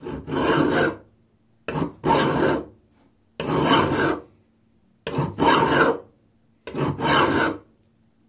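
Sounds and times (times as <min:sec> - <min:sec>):
files filing a metal plate: 0:00.0 - 0:01.1, 0:01.7 - 0:02.8, 0:03.4 - 0:04.3, 0:05.0 - 0:07.7.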